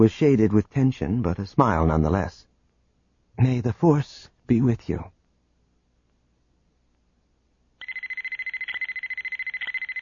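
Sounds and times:
speech: 0.0 - 2.5, 3.4 - 5.2
electronic alarm with loud shrill pulsing tone: 7.8 - 9.9.

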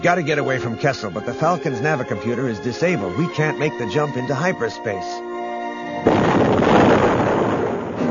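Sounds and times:
speech: 0.0 - 5.3
sci-fi space battle explosion with crackling roar: 6.0 - 8.0.

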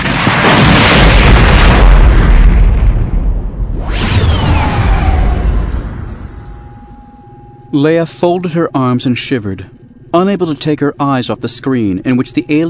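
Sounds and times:
gutted gunship exploding with a deep rumbling boom: 0.0 - 7.4
crackling debris: 0.0 - 7.5
rising whooshing sweep: 3.6 - 7.3
speech: 7.7 - 12.6.

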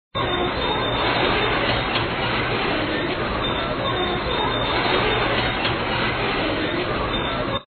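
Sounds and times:
truck loader lift: 0.2 - 7.6.

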